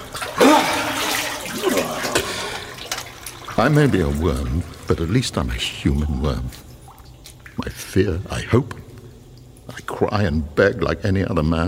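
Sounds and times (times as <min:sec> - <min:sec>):
warm water pouring and splashing into a vessel: 0:00.0 - 0:08.0
speech: 0:03.6 - 0:06.7, 0:07.6 - 0:08.8, 0:10.0 - 0:11.6.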